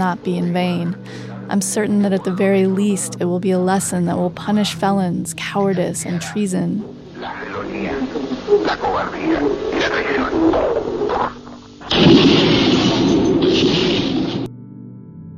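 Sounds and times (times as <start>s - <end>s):
voice giving a final address over a thin radio-like line: 0.0s - 11.4s
speech: 0.0s - 12.8s
loud roaring burst of explosions in a radio broadcast: 7.2s - 14.5s.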